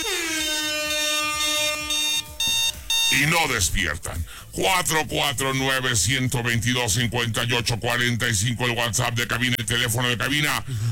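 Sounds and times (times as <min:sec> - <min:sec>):
alarm horn sound effect blaring: 0:00.0 - 0:03.6
speech: 0:03.2 - 0:10.9.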